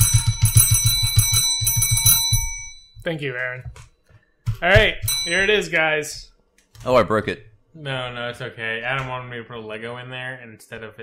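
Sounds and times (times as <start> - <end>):
bell struck repeatedly at a drinks contest finale: 0.0 - 3.0, 4.8 - 5.8
speech: 3.1 - 3.8, 4.6 - 11.0.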